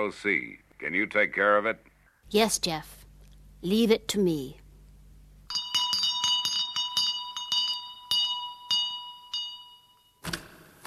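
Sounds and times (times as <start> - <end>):
speech: 0.0 - 3.0, 3.6 - 4.6
bell rung to summon a butler: 5.5 - 10.2.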